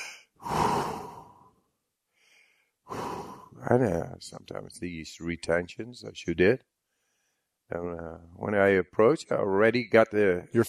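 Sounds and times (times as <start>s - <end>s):
slow deep breathing: 0.0s - 3.7s, 6.8s - 7.6s
speech: 3.6s - 6.7s, 7.7s - 10.6s.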